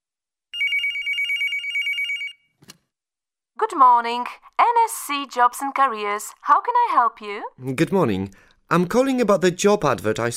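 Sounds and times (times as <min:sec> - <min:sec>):
telephone ringing with a trilling electronic tone: 0:00.6 - 0:02.5
speech: 0:03.6 - 0:10.3.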